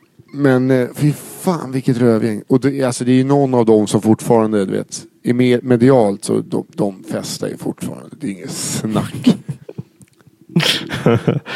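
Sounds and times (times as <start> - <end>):
speech: 0.3 - 9.4, 10.6 - 11.5
person sneezing: 10.6 - 11.0.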